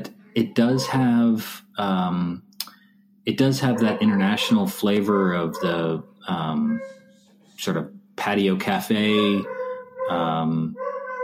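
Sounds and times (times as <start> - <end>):
speech: 0.4 - 2.5, 3.2 - 7.0, 7.6 - 10.9
old dog barking: 0.6 - 1.0, 3.6 - 6.0, 6.6 - 7.2, 9.0 - 11.2.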